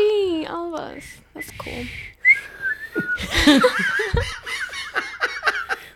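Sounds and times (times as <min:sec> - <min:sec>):
speech: 0:01.0 - 0:02.2, 0:03.0 - 0:04.4
breathy whistle made by sucking air in: 0:01.4 - 0:03.3
giggly laughter: 0:03.1 - 0:05.9.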